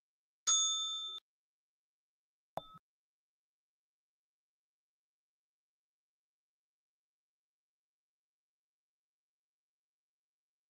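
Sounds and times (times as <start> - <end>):
bright bell ding: 0.5 - 1.2.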